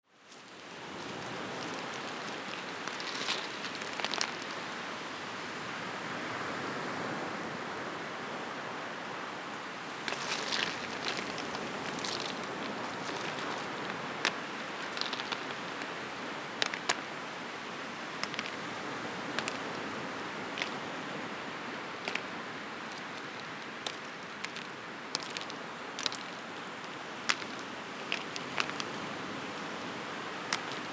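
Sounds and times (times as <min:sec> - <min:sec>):
waterfall: 0:00.1 - 0:30.9
stones crackling: 0:00.2 - 0:05.2, 0:09.8 - 0:17.1, 0:18.0 - 0:21.0, 0:21.9 - 0:30.9.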